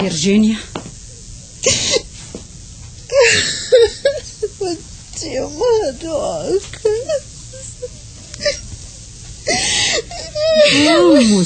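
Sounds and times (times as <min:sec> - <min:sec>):
speech: 0:00.0 - 0:00.9, 0:01.6 - 0:02.0, 0:04.6 - 0:07.3, 0:10.6 - 0:11.4
faint low hum: 0:00.0 - 0:11.4
woman crying and whimpering in a bedroom: 0:01.6 - 0:02.1, 0:03.1 - 0:04.9, 0:06.8 - 0:08.7, 0:09.4 - 0:11.4.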